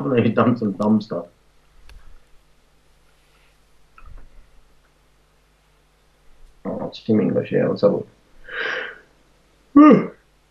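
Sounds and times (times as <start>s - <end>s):
speech: 0.0s - 1.4s, 7.0s - 8.9s, 9.8s - 10.1s
breathy inhale: 8.4s - 9.1s
loud voiced yawn: 8.5s - 9.0s, 9.8s - 10.1s.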